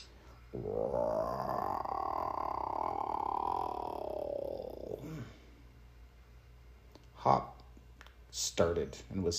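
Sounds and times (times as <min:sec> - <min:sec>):
speech: 0:00.5 - 0:01.1, 0:07.2 - 0:07.5, 0:08.4 - 0:09.3
hungry stomach rumbling: 0:00.7 - 0:05.3.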